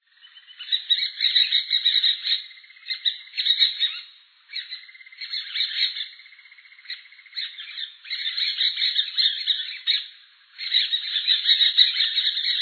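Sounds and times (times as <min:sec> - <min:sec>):
blue-fronted parakeet calling: 0:00.2 - 0:12.6.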